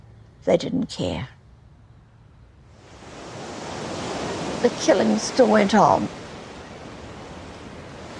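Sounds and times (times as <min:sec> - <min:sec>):
speech: 0:00.4 - 0:01.4, 0:04.6 - 0:06.2
ocean waves rolling onto a shore: 0:02.5 - 0:08.1.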